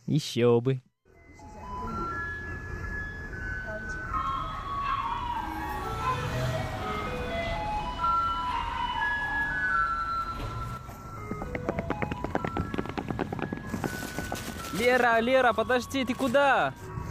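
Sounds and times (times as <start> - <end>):
speech: 0.1 - 0.9, 14.9 - 16.9
street noise: 1.0 - 17.0
garbage truck in Taiwan playing tinny melodic jingle: 1.1 - 16.8
rapid rhythmic clattering footsteps: 10.4 - 15.3.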